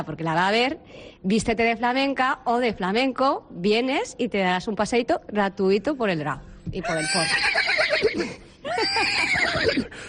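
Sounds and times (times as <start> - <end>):
speech: 0.0 - 10.0
horses neighing indoors at a flamenco-style event: 6.8 - 10.0.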